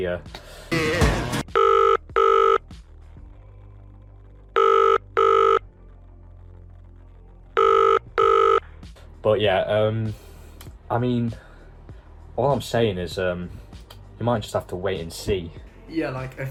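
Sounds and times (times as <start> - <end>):
speech: 0.0 - 1.4, 9.2 - 10.3, 10.9 - 11.5, 12.4 - 13.6, 14.2 - 16.5
telephone ringing: 1.5 - 2.7, 4.6 - 5.7, 7.6 - 8.6.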